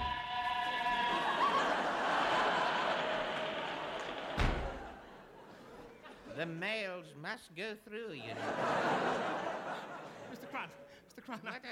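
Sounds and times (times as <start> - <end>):
laughter: 0.0 - 6.6, 8.2 - 11.7
door slamming shut: 4.0 - 5.1
speech: 6.4 - 9.9, 10.5 - 11.7.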